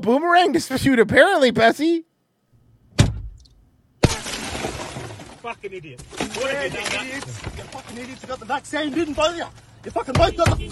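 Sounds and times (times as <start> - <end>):
speech: 0.0 - 2.1, 5.4 - 10.6
glass shattering: 4.0 - 8.7.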